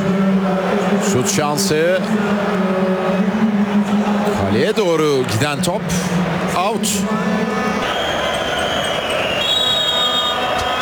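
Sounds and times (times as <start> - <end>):
stadium crowd roaring: 0.0 - 10.7
speech: 1.0 - 2.9, 4.6 - 7.8
referee's final whistle at a football match: 7.8 - 10.7.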